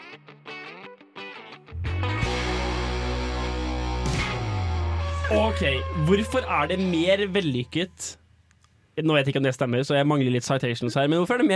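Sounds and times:
music track with distorted guitar chords and driving low end: 0:00.0 - 0:07.4
speech: 0:05.3 - 0:08.2, 0:09.0 - 0:11.5.

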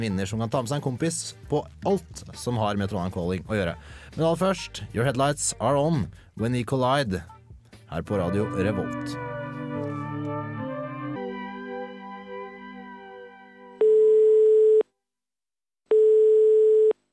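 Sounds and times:
speech: 0:00.0 - 0:09.2
music: 0:00.0 - 0:13.9
telephone line ringing tone before call is answered: 0:13.8 - 0:14.8, 0:15.9 - 0:17.0.

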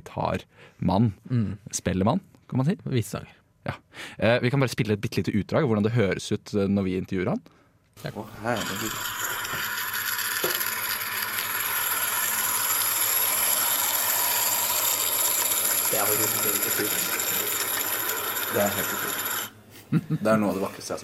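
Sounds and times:
speech: 0:00.2 - 0:09.3, 0:16.1 - 0:17.2, 0:18.5 - 0:19.3, 0:19.9 - 0:21.0
model Welsh narrow-gauge railway train running with mechanical whir: 0:08.4 - 0:19.6.

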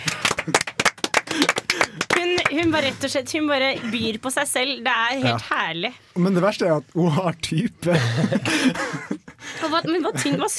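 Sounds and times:
few people clapping their hands: 0:00.0 - 0:03.0
speech: 0:02.6 - 0:10.5
laughter: 0:07.8 - 0:10.5.

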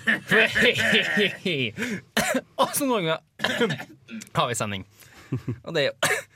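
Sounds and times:
short cough: 0:00.0 - 0:01.4, 0:02.2 - 0:02.8, 0:03.4 - 0:04.0, 0:06.0 - 0:06.3
laughing-tinged vocal sounds: 0:00.0 - 0:01.9
speech: 0:00.1 - 0:06.3.

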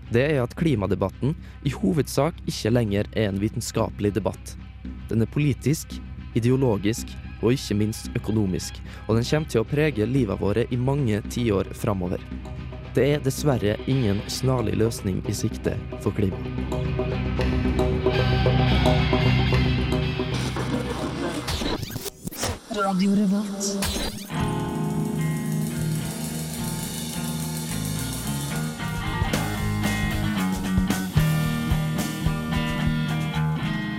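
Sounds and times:
speech: 0:00.1 - 0:18.0, 0:22.9 - 0:24.4
rock song with distorted electric guitar and full band: 0:15.8 - 0:21.6, 0:24.2 - 0:33.9.

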